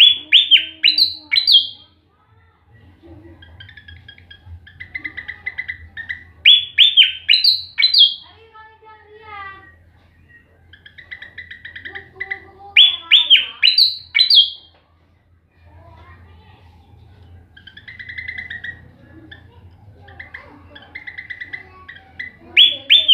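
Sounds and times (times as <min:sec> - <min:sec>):
flycatcher singing rapid bursts of bright descending whistles: 0:00.0 - 0:01.9, 0:03.6 - 0:08.3, 0:10.2 - 0:14.7, 0:20.1 - 0:23.1
soft chirps and twittering notes: 0:00.0 - 0:02.0, 0:02.7 - 0:23.1
faint low hum: 0:00.0 - 0:23.1.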